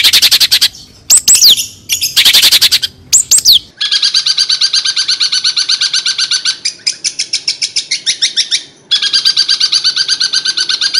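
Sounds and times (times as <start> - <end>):
long-tailed shrike harsh song: 0.0 - 10.9.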